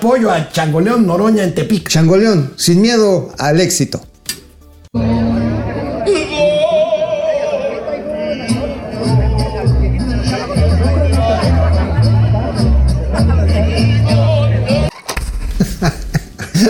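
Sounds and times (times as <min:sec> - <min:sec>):
speech: 0:00.0 - 0:04.1, 0:04.9 - 0:05.2
small crowd murmuring at a political support rally in Tepic: 0:04.9 - 0:14.9
laughter: 0:05.0 - 0:14.9, 0:15.5 - 0:16.6.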